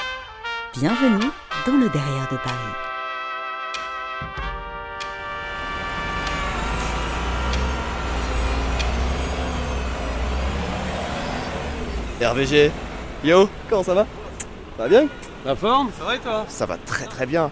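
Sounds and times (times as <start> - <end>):
speech: 0.8 - 2.8, 12.2 - 14.2, 14.8 - 17.5
steady roar of passing road noise: 5.0 - 17.5
large vehicle engine whining and rumbling at a bus stop: 5.3 - 16.8.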